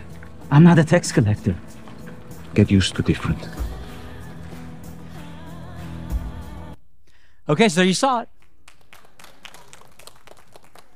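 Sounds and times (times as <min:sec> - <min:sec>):
speech: 0:00.5 - 0:01.8, 0:02.6 - 0:03.7, 0:07.5 - 0:08.3
scattered applause from a distant audience in a room: 0:08.4 - 0:10.9.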